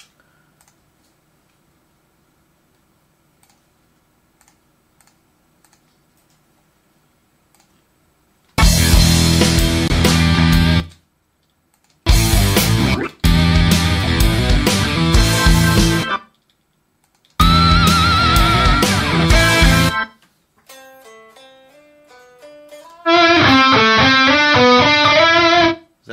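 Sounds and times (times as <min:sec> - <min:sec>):
clean-sounding DI guitar harmony line: 0:08.6 - 0:10.9, 0:12.1 - 0:16.3, 0:17.4 - 0:25.9
distorted electric guitar harmony track played back: 0:08.6 - 0:10.9, 0:12.1 - 0:16.3, 0:17.4 - 0:20.2, 0:22.8 - 0:25.9.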